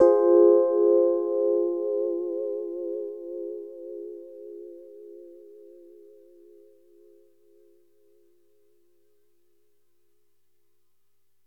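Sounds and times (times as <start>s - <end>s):
Rhodes FM electric piano: 0.0s - 6.8s.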